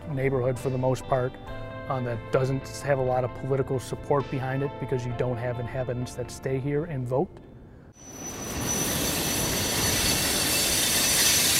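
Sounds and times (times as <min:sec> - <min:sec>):
speech: 0:00.1 - 0:08.3
high thin train wheel squeal: 0:08.0 - 0:11.5
train passing on a busy rail line: 0:08.0 - 0:11.5.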